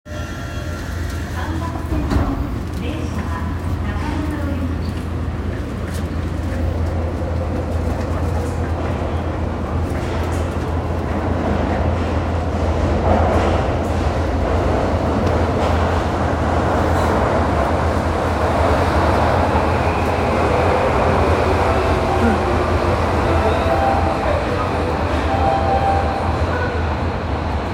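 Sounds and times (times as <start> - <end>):
train sounds at Kasumigaseki on the Hibiya Line: 0.1 - 27.7.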